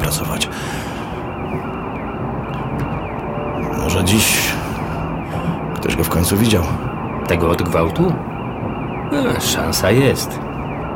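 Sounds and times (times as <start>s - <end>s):
engine and road noise inside a moving car: 0.0s - 10.9s
police siren wailing: 0.0s - 10.9s
speech: 0.1s - 0.9s, 1.5s - 1.8s, 3.9s - 4.6s, 6.0s - 8.3s, 9.1s - 10.5s.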